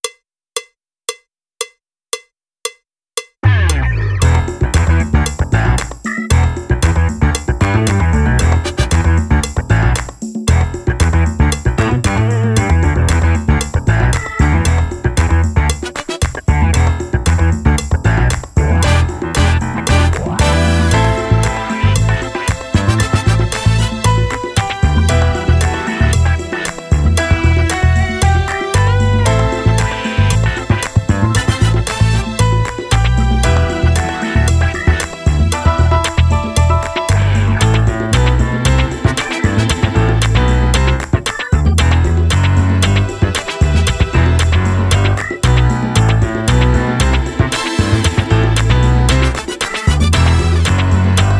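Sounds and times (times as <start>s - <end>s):
drumless disco funk music: 3.4s - 51.3s.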